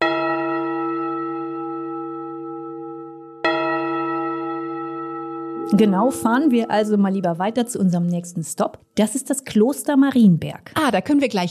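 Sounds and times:
deep resonant church bell strikes: 0.0 - 8.6
speech: 5.7 - 11.4.

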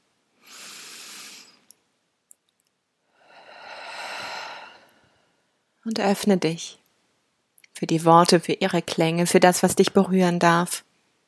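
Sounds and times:
deep breath in and out: 0.4 - 1.7, 3.0 - 5.6
speech: 5.8 - 6.8, 7.8 - 10.9.

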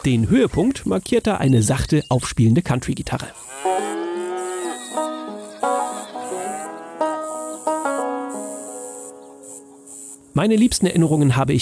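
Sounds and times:
speech: 0.0 - 3.4, 10.4 - 11.5
crickets chirring: 0.0 - 11.4
cattle mooing in a video game countryside landscape: 3.5 - 7.3.

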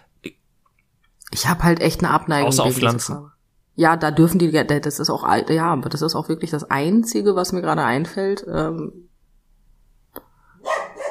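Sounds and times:
speech: 1.4 - 9.1
dog barking: 10.6 - 11.1.

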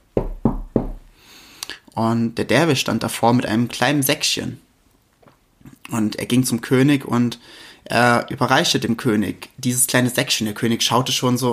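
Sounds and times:
firm knocking on a door: 0.1 - 1.1
speech: 2.0 - 4.7, 5.9 - 11.5.

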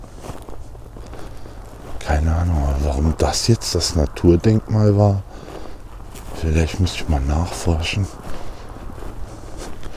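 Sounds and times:
footsteps crunching along a small trodden dirt path across a field: 0.0 - 9.9
outdoor ambience: 0.0 - 9.9
soft rustle of grass: 0.0 - 9.9
speech: 2.1 - 5.3, 6.4 - 8.2.

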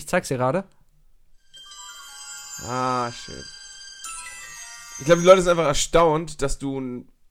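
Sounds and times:
speech: 0.1 - 0.8, 2.6 - 3.6, 5.0 - 7.1
personalized iPhone ringtone playing a bright electronic melody: 1.4 - 6.0.

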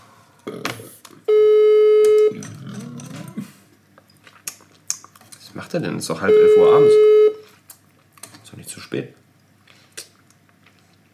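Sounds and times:
telephone ringing with an electronic tone: 1.3 - 2.4, 6.2 - 7.4
speech: 5.7 - 7.2, 8.9 - 9.2.

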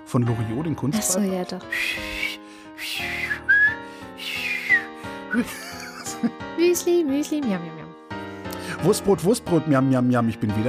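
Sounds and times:
speech: 0.1 - 3.1, 5.3 - 8.0, 8.8 - 10.6
person whistling a wavering melodic tune: 1.7 - 5.0
laughter: 5.3 - 6.4.

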